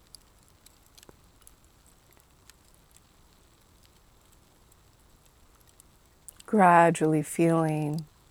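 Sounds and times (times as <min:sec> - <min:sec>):
campfire popping and snapping: 0:00.0 - 0:06.5
campfire crackling: 0:00.0 - 0:08.3
speech: 0:06.6 - 0:08.1.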